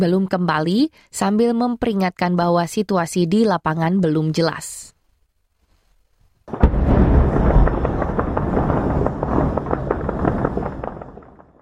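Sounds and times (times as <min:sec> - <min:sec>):
speech: 0:00.0 - 0:05.0
celebratory gunfire and tracer rounds over Beirut Lebanon: 0:06.5 - 0:11.5
fireworks bursts over Beirut Lebanon: 0:06.5 - 0:11.6.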